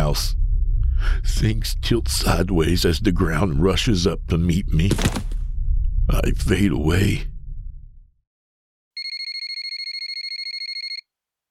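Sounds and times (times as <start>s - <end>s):
speech: 0.1s - 0.4s, 1.3s - 5.3s, 6.1s - 7.3s
mobile phone ringtone: 9.0s - 11.0s.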